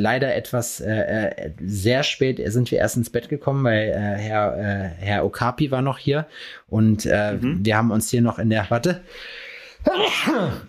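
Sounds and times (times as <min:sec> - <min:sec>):
speech: 0:00.0 - 0:10.6
person sneezing: 0:09.8 - 0:10.6.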